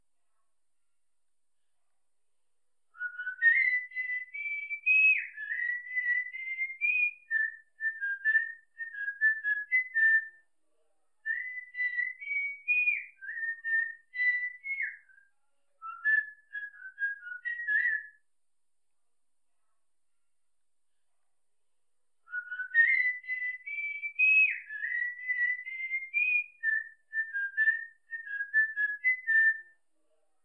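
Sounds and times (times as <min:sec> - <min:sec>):
whistling for a cockatiel: 0:03.0 - 0:10.5, 0:11.3 - 0:15.2, 0:15.8 - 0:18.2, 0:22.3 - 0:29.8.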